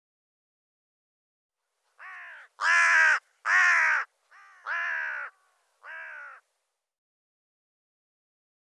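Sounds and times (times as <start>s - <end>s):
bird giving harsh hoarse cawing calls: 2.0s - 6.5s.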